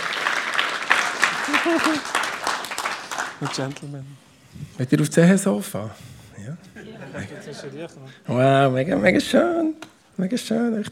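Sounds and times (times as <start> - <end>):
people cheering: 0.0 - 3.8
audience applause: 0.0 - 3.9
laughter: 1.2 - 2.5, 6.6 - 8.2
speech: 1.6 - 2.2, 3.4 - 10.9.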